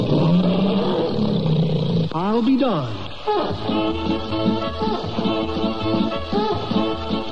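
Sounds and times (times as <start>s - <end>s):
tiger roaring from a car's gasoline tank: 0.0s - 2.2s
speech: 2.4s - 7.2s.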